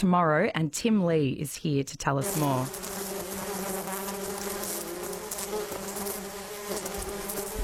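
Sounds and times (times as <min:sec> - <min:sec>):
speech: 0:00.0 - 0:02.9
dense swarm of bees buzzing: 0:02.2 - 0:07.6.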